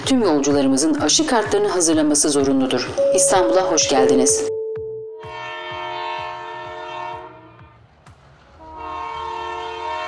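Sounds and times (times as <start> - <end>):
speech: 0.1 - 4.5
train horn blasts at Halkalı train station in Istanbul: 5.2 - 7.7, 8.6 - 10.0
rumble and rhythmic clatter of a passing train at Halkalı station in Istanbul: 5.6 - 10.0.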